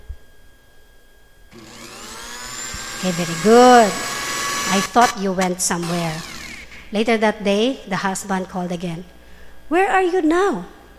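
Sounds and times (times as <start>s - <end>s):
household blender motor whirring: 1.5s - 6.9s
speech: 3.0s - 4.1s, 4.7s - 6.3s, 6.9s - 10.8s.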